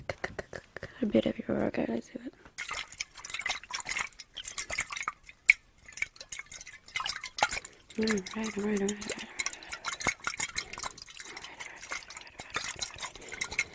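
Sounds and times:
speech: 1.0s - 2.4s, 8.0s - 9.2s
water sloshing and dripping in a container: 2.5s - 13.7s.

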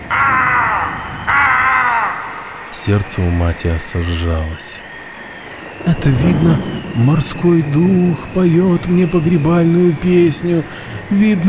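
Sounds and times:
hoarse cry of a raven: 0.0s - 2.8s
speech: 2.8s - 4.9s, 5.8s - 11.4s.

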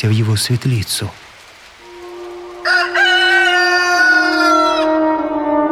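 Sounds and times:
speech: 0.0s - 1.3s
rooster crowing at dawn: 1.8s - 5.6s.

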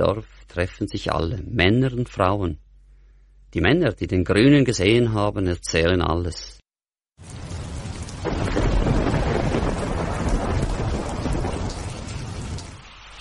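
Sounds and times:
speech: 0.0s - 2.6s, 3.5s - 6.6s
rumbling thunder: 7.2s - 13.2s
steady heavy rain in a thunderstorm: 7.2s - 13.2s.

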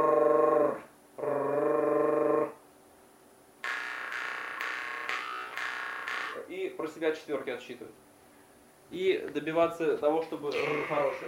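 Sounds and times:
person growling in a low buzzing tone: 0.0s - 2.6s, 10.6s - 11.2s
jaw harp played with an even strum: 3.6s - 6.5s, 10.5s - 11.2s
speech: 6.8s - 8.1s, 8.9s - 11.2s.

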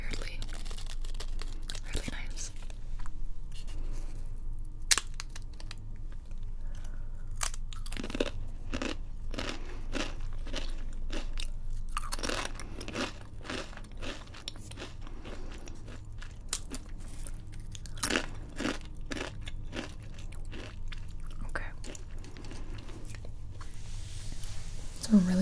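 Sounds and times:
crunching and chewing flavor-blasted chips dusted with powdered seasoning: 0.0s - 25.2s.

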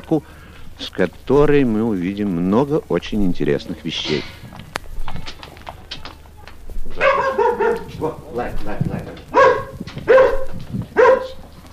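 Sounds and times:
speech: 0.1s - 4.4s
dog barking at visitors: 6.9s - 8.2s, 9.3s - 11.4s.

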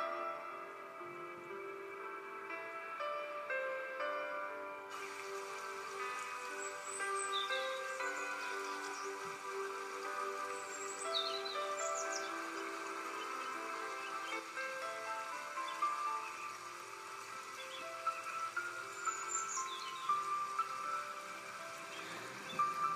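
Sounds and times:
mellow ambient music drone: 0.0s - 22.9s
bird chirps: 6.2s - 22.9s.

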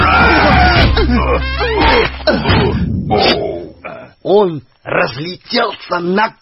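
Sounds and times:
two voices yelling and groaning as they fall: 0.0s - 4.2s
speech: 4.4s - 6.4s.

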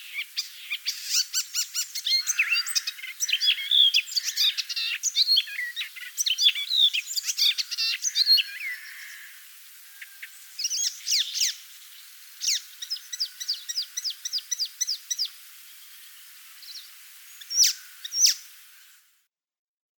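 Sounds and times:
Icterine warbler chirps and high calls: 0.0s - 19.0s.

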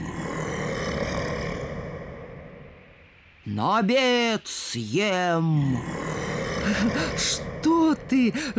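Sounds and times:
bear roaring: 0.0s - 2.7s, 5.7s - 7.7s
speech: 3.5s - 8.5s.

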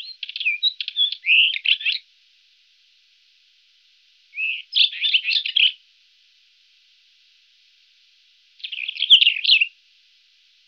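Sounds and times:
White-crowned wheatear singing scratchy twittering phrases: 0.0s - 2.0s, 4.4s - 5.8s, 8.6s - 9.8s.

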